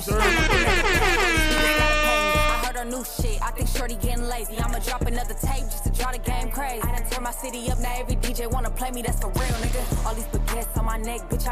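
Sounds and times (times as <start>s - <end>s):
loud air horn blaring: 0.0s - 3.1s
deep thumping beat: 0.0s - 7.1s, 7.7s - 11.5s
speech: 3.1s - 11.5s.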